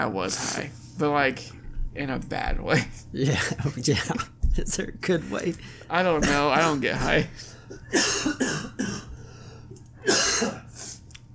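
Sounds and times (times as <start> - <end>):
speech: 0.0 - 9.1, 10.0 - 10.6
harsh raspy smoker's cough: 6.2 - 9.3, 10.0 - 10.9.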